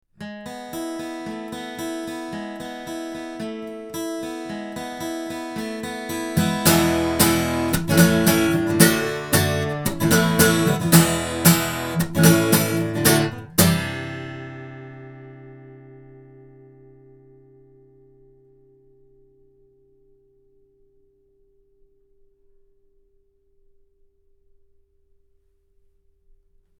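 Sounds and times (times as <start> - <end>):
guitar recorded with an omni microphone: 0.1 - 21.5.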